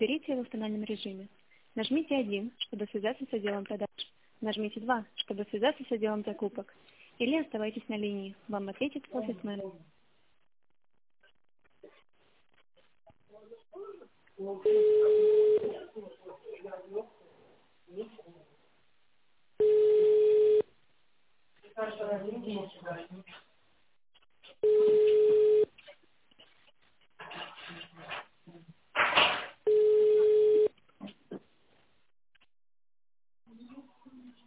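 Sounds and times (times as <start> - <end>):
speech: 0.0 - 10.0, 13.8 - 17.2, 21.8 - 23.4, 24.6 - 25.7
office phone line ringing tone: 14.7 - 15.6, 19.6 - 20.7, 24.6 - 25.7, 29.7 - 30.7.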